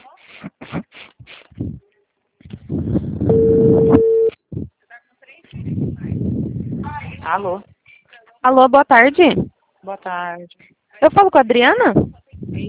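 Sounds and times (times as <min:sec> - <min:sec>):
phone call ringback tone: 0:03.3 - 0:04.3
speech: 0:07.4 - 0:07.7, 0:08.4 - 0:12.1.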